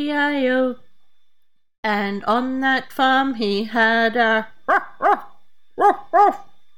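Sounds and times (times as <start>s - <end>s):
speech: 0.0s - 0.8s, 1.8s - 5.2s, 5.8s - 6.5s
dog barking: 4.7s - 6.5s.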